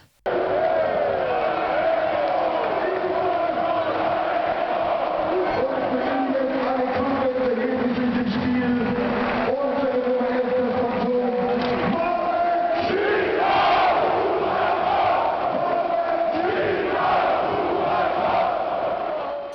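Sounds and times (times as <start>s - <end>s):
football stadium crowd chanting: 0.0s - 7.0s, 12.2s - 19.5s
football stadium crowd cheering at a cup semi-final: 0.0s - 19.5s.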